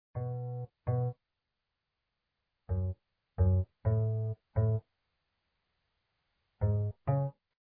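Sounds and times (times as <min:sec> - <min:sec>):
bass game music: 0:00.2 - 0:01.1, 0:02.7 - 0:04.8, 0:06.6 - 0:07.3.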